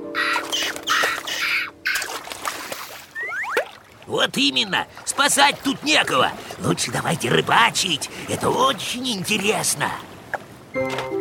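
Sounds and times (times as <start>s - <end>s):
seagulls calling with harsh squawking cries: 0.0s - 2.3s, 3.0s - 3.7s
watery noise: 0.0s - 11.1s
thin high chirps: 0.1s - 2.0s
speech: 4.1s - 10.1s, 10.8s - 11.1s.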